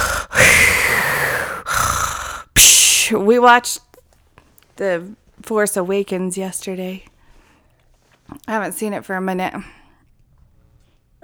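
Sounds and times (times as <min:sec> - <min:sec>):
voice imitating heavy rasping mechanical mask breathing: 0:00.0 - 0:03.2
speech: 0:02.6 - 0:03.9, 0:04.8 - 0:07.1, 0:08.3 - 0:09.8.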